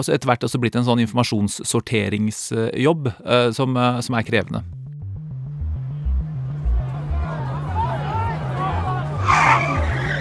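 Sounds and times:
speech: 0.0s - 4.8s
crowd chatter: 6.5s - 10.1s
people shouting: 7.1s - 10.2s
car driving fast into a group of demonstrating youths: 7.7s - 10.2s.

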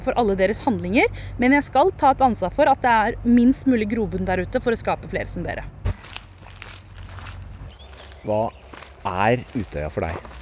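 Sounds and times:
speech: 0.0s - 5.8s, 8.2s - 10.3s
footsteps of people walking outdoors on Utøya, Norway: 5.6s - 10.3s.

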